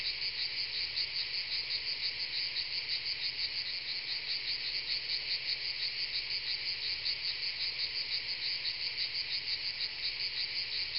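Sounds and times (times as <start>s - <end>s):
cicadas: 0.0s - 10.9s.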